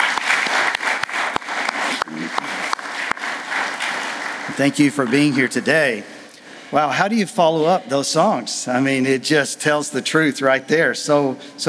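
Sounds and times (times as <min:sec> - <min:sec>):
large audience applauding: 0:00.0 - 0:05.8
speech: 0:04.6 - 0:06.1, 0:06.7 - 0:11.6.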